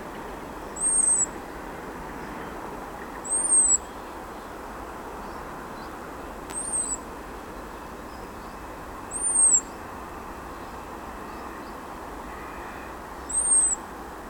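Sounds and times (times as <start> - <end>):
low rumbling background noise: 0.0 - 14.2
European robin Erithacus rubecula giving thin high seee calls: 0.8 - 1.4, 3.2 - 4.1, 5.8 - 9.9, 10.7 - 13.9.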